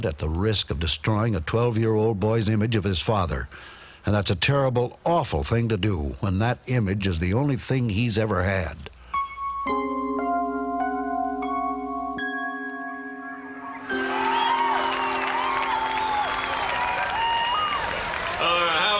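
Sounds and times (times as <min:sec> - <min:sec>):
speech: 0:00.0 - 0:08.9
sustained musical chord: 0:09.2 - 0:17.0
crowd applauding and cheering for members of Troop 711 after a reenactment: 0:13.7 - 0:18.9
whoops and whistles from the crowd: 0:13.8 - 0:17.8.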